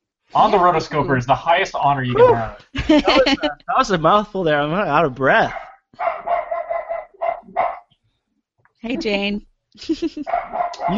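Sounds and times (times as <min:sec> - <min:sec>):
speech: 0:00.3 - 0:06.1, 0:08.8 - 0:10.9
laughter: 0:00.4 - 0:05.5, 0:09.8 - 0:10.2, 0:10.8 - 0:10.9
female dog barking excitedly: 0:05.3 - 0:07.9, 0:10.2 - 0:10.9.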